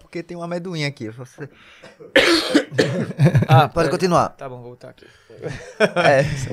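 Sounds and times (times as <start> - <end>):
speech: 0.1 - 6.5
person coughing: 1.8 - 3.4
laughter: 3.0 - 3.8, 5.4 - 6.5.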